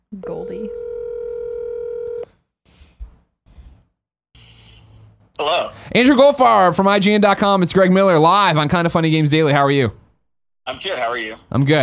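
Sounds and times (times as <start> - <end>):
speech: 0.1 - 0.9, 5.8 - 10.0, 10.7 - 11.8
telephone dial tone: 0.4 - 2.2.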